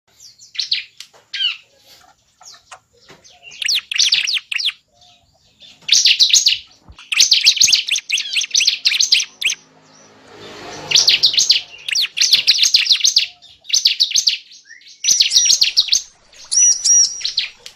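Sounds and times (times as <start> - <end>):
lovebird chirping calls and rapid shrill chattering: 3.3 - 4.8, 5.8 - 9.6, 10.8 - 17.7.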